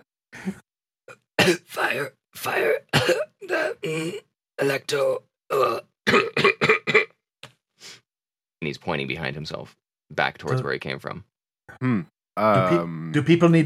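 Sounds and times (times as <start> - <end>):
speech: 0.4 - 0.6, 1.5 - 7.1, 8.6 - 13.6
raspy coughs and throat clearing in imitation: 0.4 - 7.2
hoarse words: 1.6 - 2.9, 11.8 - 13.6.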